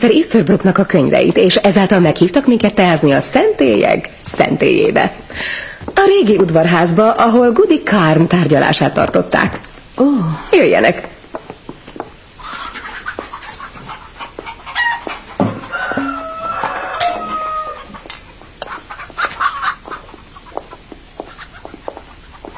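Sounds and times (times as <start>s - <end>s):
speech: 0.0s - 11.1s
chickens and roosters clucking in a farmyard: 12.3s - 22.5s
rooster crowing: 14.8s - 18.0s.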